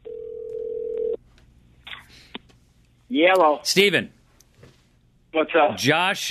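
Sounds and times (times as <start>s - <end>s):
telephone dial tone: 0.0s - 1.2s
speech: 3.1s - 4.2s, 5.3s - 6.2s.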